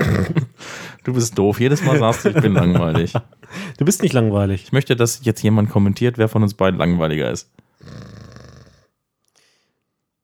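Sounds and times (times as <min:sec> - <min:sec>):
laughter: 0:00.0 - 0:04.3
speech: 0:01.0 - 0:08.2
person imitating a loud rasping snore: 0:07.8 - 0:08.9.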